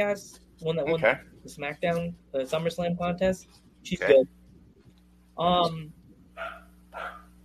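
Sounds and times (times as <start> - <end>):
speech: 0.0 - 4.4, 5.4 - 7.2
low steady hum: 0.0 - 7.4
dog barking: 6.4 - 7.4.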